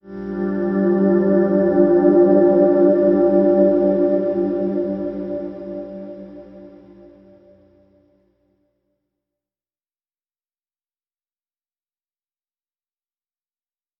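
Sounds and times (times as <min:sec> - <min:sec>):
soft musical sting in G: 0:00.0 - 0:08.0.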